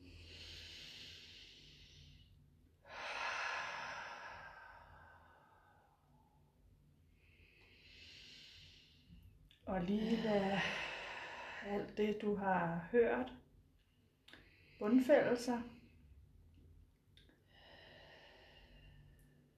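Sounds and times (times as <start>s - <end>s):
slow deep breathing in and out: 0.0s - 12.0s, 14.2s - 14.9s, 17.2s - 19.5s
speech: 9.7s - 10.8s, 11.6s - 13.4s, 14.8s - 15.8s.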